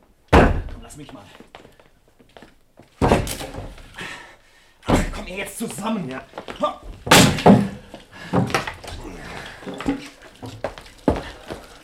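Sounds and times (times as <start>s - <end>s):
heavy booming thuds of a door being kicked in: 0.3s - 0.9s, 3.0s - 3.9s, 4.9s - 5.3s, 6.8s - 9.1s
speech: 0.9s - 1.7s, 5.2s - 7.7s.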